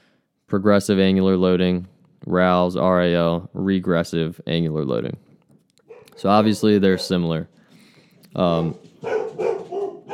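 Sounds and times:
speech: 0.5 - 5.3, 6.2 - 7.6, 8.4 - 9.5
dogs barking in a home: 5.8 - 7.4, 8.6 - 10.1.

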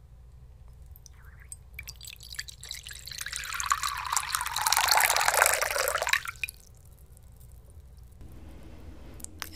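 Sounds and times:
water pouring steadily into a bowl: 0.9 - 8.2.

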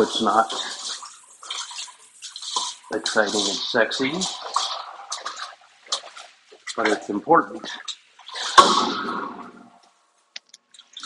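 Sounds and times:
speech: 0.0 - 0.8, 2.9 - 4.5, 6.8 - 7.9
water sloshing inside a tank: 0.0 - 11.0
sharp metallic bang inside a tank: 8.5 - 9.8.

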